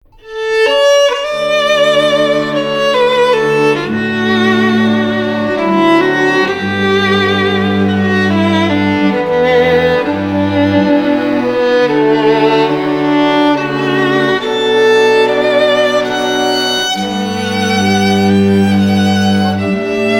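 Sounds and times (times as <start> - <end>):
classical string quartet playing Celtic Americana: 0.2 - 20.1.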